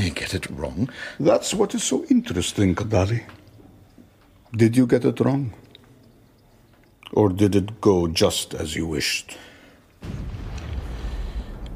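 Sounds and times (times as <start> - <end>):
speech: 0.1 - 3.4, 4.5 - 5.6, 7.1 - 10.3
cannon firing with deep rumble: 10.0 - 11.7.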